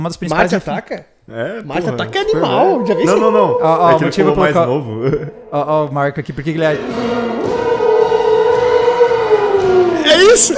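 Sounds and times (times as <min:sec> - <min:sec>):
speech: 0:00.0 - 0:07.6, 0:10.1 - 0:10.5
theremin playing eerie sci-fi tone: 0:01.8 - 0:04.9, 0:06.7 - 0:10.5
laughter: 0:01.8 - 0:05.5, 0:06.8 - 0:10.5.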